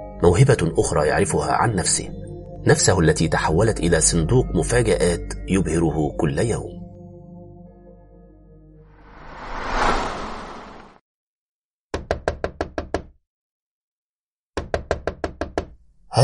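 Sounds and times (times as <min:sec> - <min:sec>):
speech: 0:00.2 - 0:06.8
low rumbling swell: 0:09.0 - 0:10.9
rough loud knocking on a door: 0:12.0 - 0:13.1, 0:14.6 - 0:15.8.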